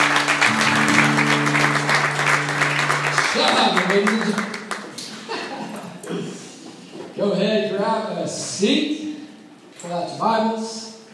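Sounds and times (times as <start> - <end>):
sustained organ-like chord: 0.0 - 4.1
congregation applauding: 0.0 - 5.4
laughter: 4.9 - 6.1
speech: 8.0 - 9.0, 9.9 - 10.9.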